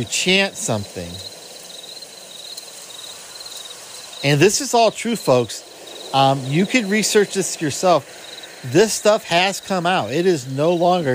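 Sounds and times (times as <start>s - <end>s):
speech: 0.0s - 1.3s, 4.2s - 11.1s
constant bed of broadband noise: 0.0s - 11.1s
owl hooting: 0.0s - 11.1s.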